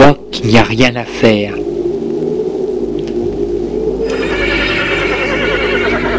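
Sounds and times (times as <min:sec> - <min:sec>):
steady low rumble: 0:00.0 - 0:06.1
speech: 0:00.1 - 0:01.6
horse whinnying: 0:04.1 - 0:06.1.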